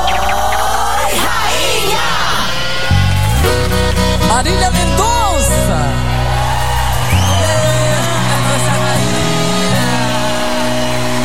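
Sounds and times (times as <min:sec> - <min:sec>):
large concert crowd cheering and shouting: 0:00.0 - 0:11.2.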